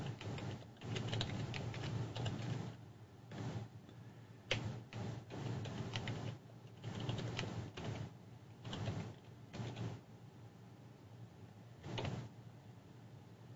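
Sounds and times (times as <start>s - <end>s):
typing on a computer keyboard to log in to a website: 0.0s - 2.6s, 4.5s - 9.9s, 11.9s - 12.2s.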